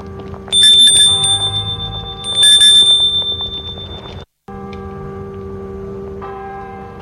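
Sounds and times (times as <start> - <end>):
gate bell ringing at the entrance to a house: 0.6 - 4.2
steady tone: 0.6 - 4.2.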